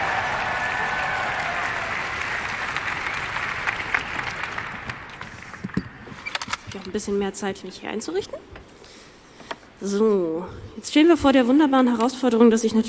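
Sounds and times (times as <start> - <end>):
audience applause: 0.0 - 6.3
speech: 6.9 - 8.4, 9.8 - 12.8.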